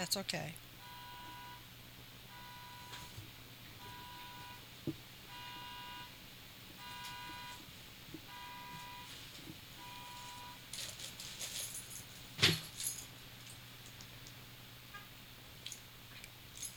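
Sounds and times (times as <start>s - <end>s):
speech: 0.0s - 0.7s
quiet hum: 0.0s - 16.7s
car keys jangling and clinking: 10.2s - 13.6s, 16.5s - 16.7s.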